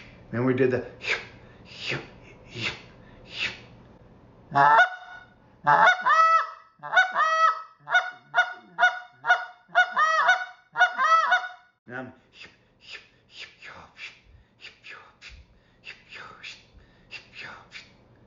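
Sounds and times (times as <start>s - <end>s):
speech: 0.3s - 1.1s, 4.6s - 4.8s, 5.6s - 5.9s
goose call clucking and moaning honks: 4.5s - 11.7s.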